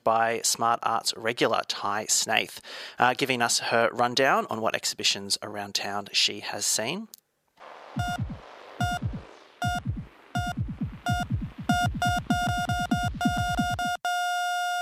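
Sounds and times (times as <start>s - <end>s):
speech: 0.0s - 7.2s, 8.0s - 8.3s
sustained flatline tone: 7.7s - 14.8s
heartbeat sound effect of deep thumping beats: 8.0s - 14.0s
electronic monitor beeps: 8.0s - 14.3s.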